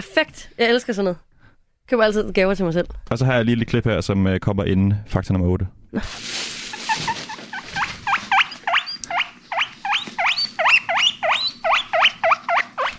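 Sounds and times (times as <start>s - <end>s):
speech: 0.1s - 1.3s, 1.9s - 6.4s
rescue guinea pig squeaking: 6.8s - 12.9s.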